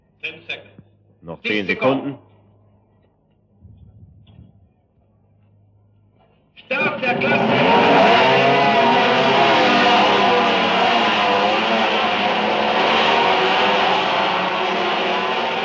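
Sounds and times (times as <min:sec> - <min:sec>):
speech: 0:00.2 - 0:02.3, 0:06.7 - 0:07.8
racing motorcycles with single-cylinder rotary-valve engines firing up at a race start: 0:06.8 - 0:15.6.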